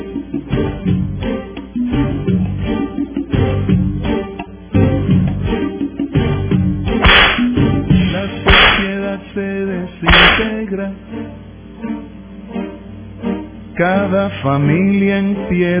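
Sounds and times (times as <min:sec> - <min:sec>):
backing music: 0:00.0 - 0:15.7
whip cracks: 0:07.0 - 0:07.6, 0:08.5 - 0:09.0, 0:10.1 - 0:10.6
speech: 0:14.4 - 0:15.7.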